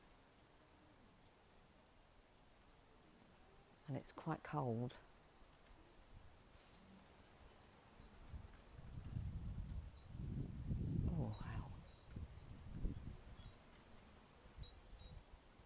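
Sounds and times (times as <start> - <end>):
speech: 3.9 - 5.1
gusty wind buffeting the microphone outdoors: 8.1 - 13.7.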